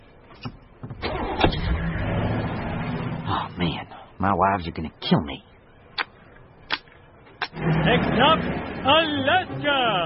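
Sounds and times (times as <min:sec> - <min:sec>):
truck engine cranking, starting and idling: 0:00.9 - 0:03.5, 0:07.4 - 0:10.0
speech: 0:04.2 - 0:05.5, 0:07.9 - 0:10.0.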